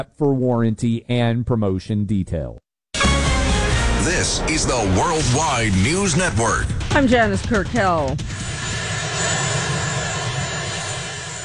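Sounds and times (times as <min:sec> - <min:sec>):
speech: 0:00.0 - 0:02.6, 0:04.0 - 0:08.6
presidential helicopter landing: 0:06.9 - 0:11.4.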